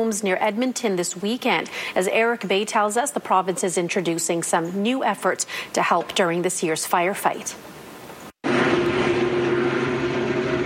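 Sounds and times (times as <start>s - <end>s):
speech: 0.0s - 7.8s
helicopter hovering over a fire in Parkland County near Edmonton: 8.4s - 10.6s.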